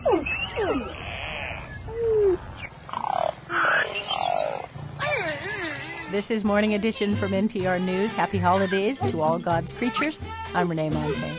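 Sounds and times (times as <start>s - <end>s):
beluga whale whistles, chirps and buzzy squeals: 0.0s - 6.1s
speech: 6.1s - 11.3s.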